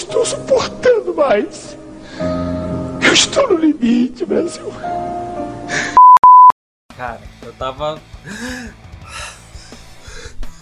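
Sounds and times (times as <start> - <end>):
speech: 0.0 - 2.5, 3.1 - 5.8, 7.0 - 9.2
person imitating breathless panting: 8.2 - 10.6.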